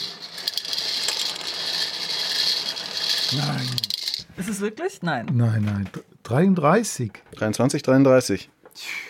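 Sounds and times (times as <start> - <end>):
toy lottery number drawing machine mechanism whirring and rattling: 0.0 - 4.3
speech: 3.3 - 8.9.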